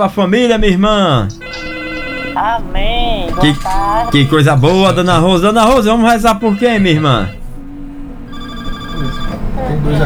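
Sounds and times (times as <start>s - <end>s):
speech: 0.0s - 1.6s, 2.4s - 7.4s, 9.8s - 10.0s
telephone ringing with a steady electronic tone: 1.3s - 7.5s, 8.2s - 10.0s.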